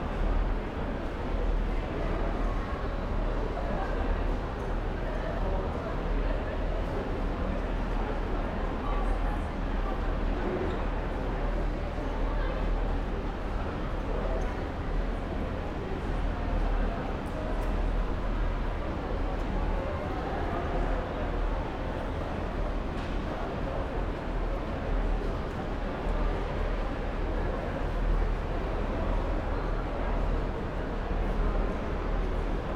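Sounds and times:
crowd babble in an urban train station: 0.0 - 32.7.

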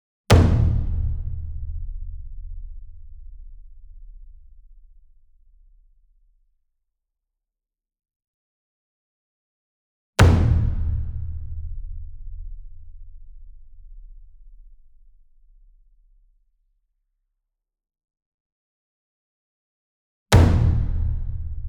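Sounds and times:
60 inch taiko drum hit hard with medium beater: 0.3 - 2.6, 10.2 - 12.0, 20.4 - 21.6.

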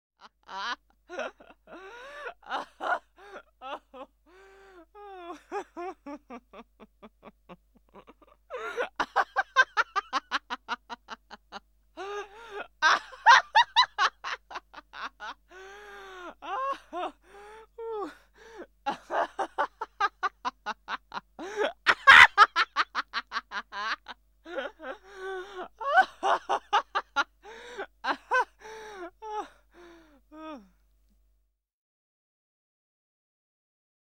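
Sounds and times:
woman laughing: 0.2 - 4.1, 5.0 - 15.4, 17.8 - 29.6.

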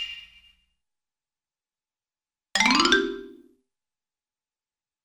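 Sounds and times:
cartoon xylophone hits: 2.6 - 3.5.

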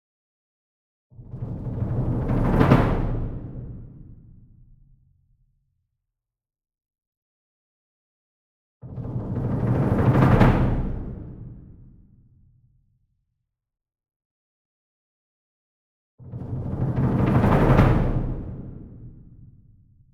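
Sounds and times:
single 66 Inch drum roll with medium soft beater: 1.3 - 4.1, 8.9 - 11.7, 16.3 - 19.2.

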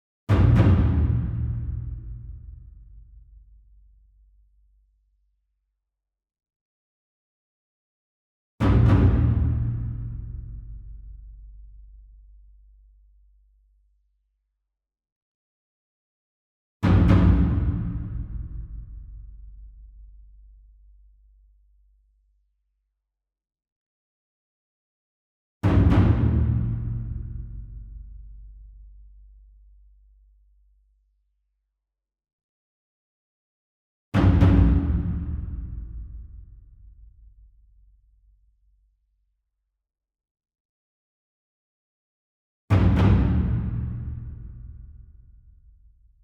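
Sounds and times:
taiko drum ensemble: 0.3 - 2.5, 8.7 - 10.4, 16.8 - 19.1, 25.7 - 27.5, 34.2 - 36.4, 42.7 - 44.6.

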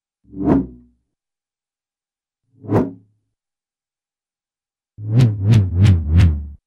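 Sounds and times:
low-pitched cartoon swish: 0.3 - 0.9, 2.6 - 3.1, 5.0 - 6.6.

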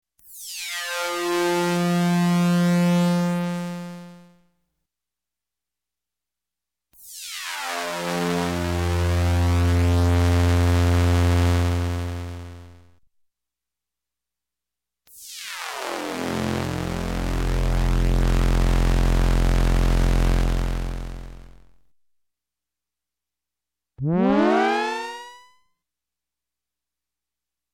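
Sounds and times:
electronic space horn: 0.9 - 4.2, 7.6 - 12.7, 16.2 - 21.6, 24.0 - 25.5.

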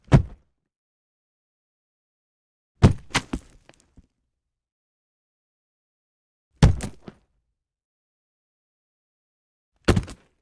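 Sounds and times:
body falling on dirt: 2.8 - 4.0, 9.9 - 10.4.

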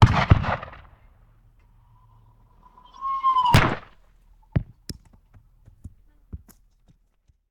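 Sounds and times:
cannon firing a cannonball: 0.0 - 1.4, 3.4 - 4.1.

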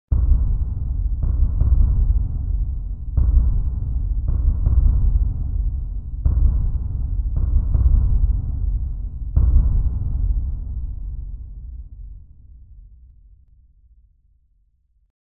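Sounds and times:
deep impact drum hit: 0.1 - 12.0.

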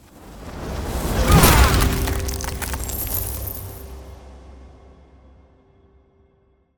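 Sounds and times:
ice spell damage effect of a frost claw swipe: 0.6 - 4.0.

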